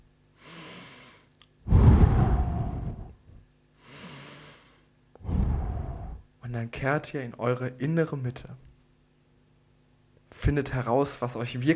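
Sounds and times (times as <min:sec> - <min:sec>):
deep slow breathing in and out during a guided relaxation exercise: 0:00.4 - 0:06.3
speech: 0:06.6 - 0:08.6, 0:10.4 - 0:11.7.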